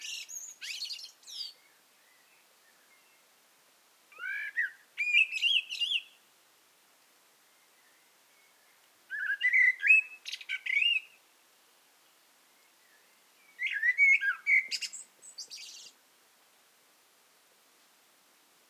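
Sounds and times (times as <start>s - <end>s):
Eurasian blackbird Turdus merula singing: 0.0s - 3.2s, 4.2s - 6.2s, 7.8s - 11.2s, 12.8s - 16.0s.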